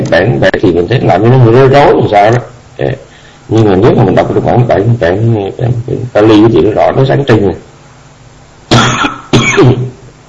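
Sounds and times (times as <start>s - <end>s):
speech: 0.2s - 7.7s, 8.9s - 9.8s
loud harsh coughs: 8.7s - 10.0s.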